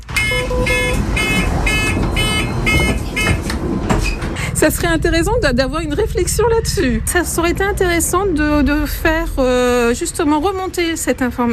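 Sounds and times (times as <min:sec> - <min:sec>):
bus warning beep: 0:00.0 - 0:04.6
low rumble of engine and traffic noise: 0:00.0 - 0:11.5
speech: 0:04.6 - 0:11.5.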